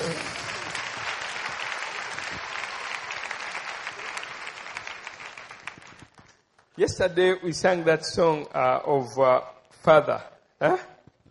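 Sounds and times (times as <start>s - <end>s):
large audience applause: 0.0s - 6.3s
speech: 6.8s - 10.9s.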